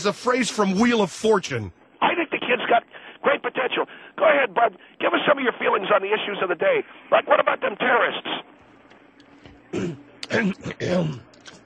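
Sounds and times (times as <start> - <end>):
speech: 0.0 - 8.5, 9.7 - 11.3
man clearing throat: 9.7 - 11.3.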